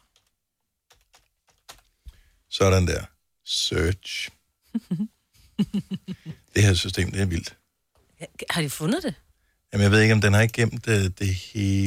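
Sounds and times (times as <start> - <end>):
typing on a computer keyboard: 0.9 - 1.9
speech: 2.6 - 7.6, 8.2 - 11.8
laughter: 5.6 - 6.4.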